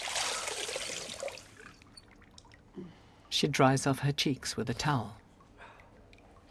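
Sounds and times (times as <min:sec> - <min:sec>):
steady trickle of running tap water: 0:00.0 - 0:01.7
woman rinsing her face with soft splashing: 0:00.0 - 0:01.7
speech: 0:02.8 - 0:05.2.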